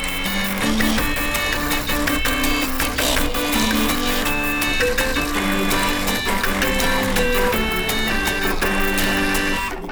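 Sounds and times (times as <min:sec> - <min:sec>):
old printers and scanners whirring and buzzing: 0:00.0 - 0:09.9
stepper-motor tones forming a tuned melody: 0:00.0 - 0:09.9.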